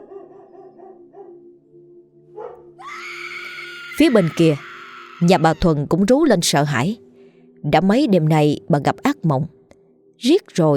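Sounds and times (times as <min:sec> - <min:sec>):
dog barking on a winter night: 0:00.0 - 0:01.5, 0:02.3 - 0:02.8
speech: 0:04.0 - 0:07.0, 0:07.6 - 0:09.6, 0:10.2 - 0:10.7.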